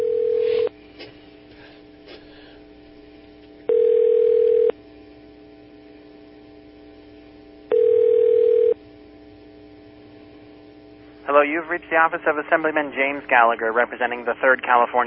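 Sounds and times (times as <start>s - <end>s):
outgoing phone call ringing tones: 0.0s - 0.7s, 3.7s - 4.8s, 7.7s - 8.8s
quiet phone line hiss: 5.9s - 15.0s
speech: 11.6s - 15.0s.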